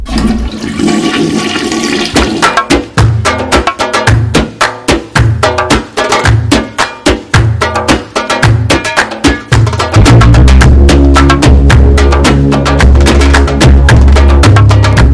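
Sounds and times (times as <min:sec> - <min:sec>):
toilet flushing: 0:00.0 - 0:02.5
punchy rhythmic music beat: 0:01.8 - 0:15.1.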